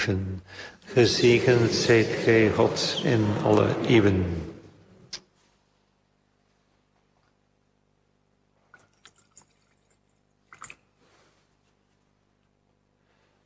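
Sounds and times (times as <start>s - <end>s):
speech: 0.0s - 4.5s
laughter: 0.8s - 5.0s
water trickling into wine in a metal chalice: 8.7s - 10.9s.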